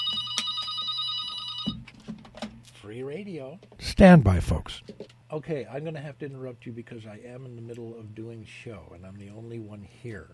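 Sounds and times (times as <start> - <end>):
telephone ringing with bright buzzing electronic tone: 0.0 - 1.9
speech: 2.9 - 10.3.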